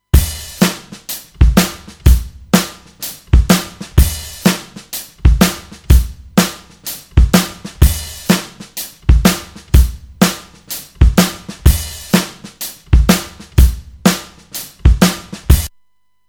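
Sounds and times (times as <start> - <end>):
acoustic drums: 0.0 - 15.7.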